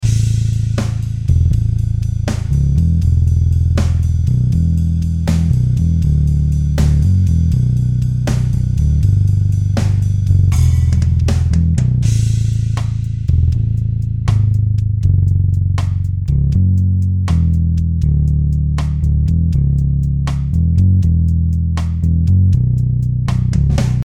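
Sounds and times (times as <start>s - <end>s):
violin bass: 0.0s - 24.0s.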